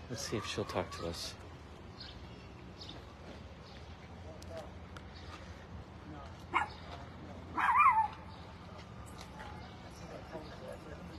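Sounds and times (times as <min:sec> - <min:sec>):
outdoor murmur: 0:00.0 - 0:11.1
speech: 0:00.1 - 0:01.4
dog barking: 0:06.5 - 0:06.8, 0:07.6 - 0:08.2
dog yelping: 0:07.5 - 0:08.2.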